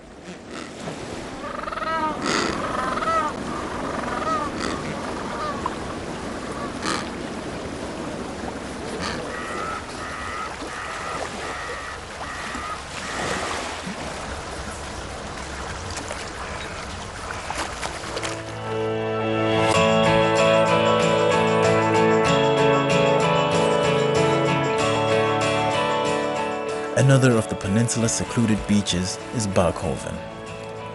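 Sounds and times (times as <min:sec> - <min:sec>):
surf and lapping water by the sea: 0:00.0 - 0:30.9
African penguin colony braying and honking: 0:01.4 - 0:05.7, 0:06.5 - 0:07.2, 0:08.9 - 0:13.3
speech: 0:27.1 - 0:30.4.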